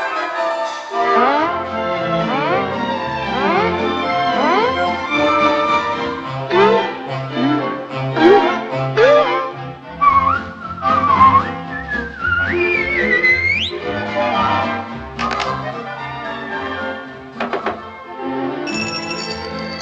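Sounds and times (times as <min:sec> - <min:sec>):
lively instrumental accompaniment: 0:00.0 - 0:19.8
person whistling a bright bouncy melody: 0:10.0 - 0:13.8.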